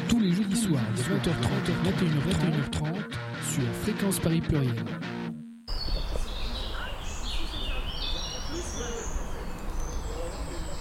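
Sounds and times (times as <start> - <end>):
speech: 0.6 - 5.2
birds singing and chirping outdoors: 5.7 - 10.7.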